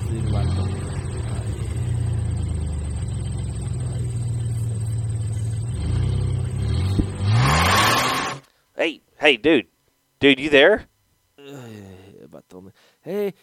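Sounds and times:
car engine idling and revving as the driver presses the gas: 0.0 - 8.4
speech: 8.8 - 10.9, 12.6 - 13.4.

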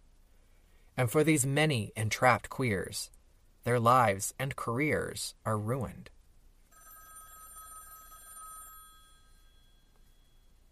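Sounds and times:
faint room hiss: 0.0 - 10.7
speech: 1.0 - 6.2
old-fashioned telephone bell ringing: 6.7 - 10.6.

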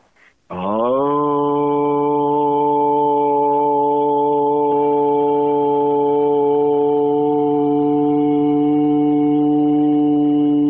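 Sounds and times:
quick breath: 0.0 - 0.5
single voice toning an Aramaic prayer word as a long low hum: 0.5 - 10.6.

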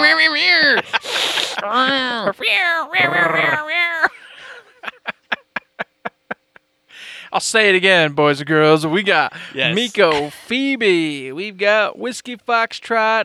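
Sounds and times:
speech: 0.0 - 4.0, 7.3 - 13.2
voice imitating an air horn like a yowling cat: 0.0 - 4.1
laughter: 0.0 - 7.3, 8.3 - 11.7.

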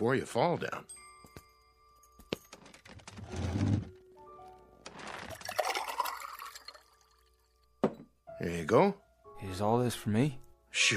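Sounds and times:
speech: 0.0 - 1.0, 8.4 - 10.9
water being poured for someone: 5.3 - 7.6.

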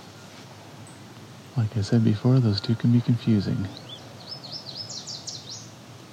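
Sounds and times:
speech: 1.6 - 3.8
yellow warbler singing: 1.8 - 5.8.

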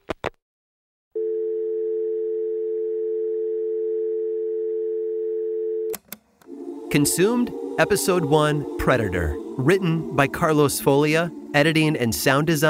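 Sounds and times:
telephone dial tone after the line is hung up: 1.2 - 6.0
speech: 6.9 - 12.6.

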